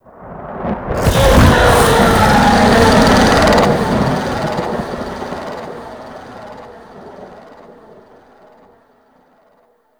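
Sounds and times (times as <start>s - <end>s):
monster bellow: 1.0s - 7.2s.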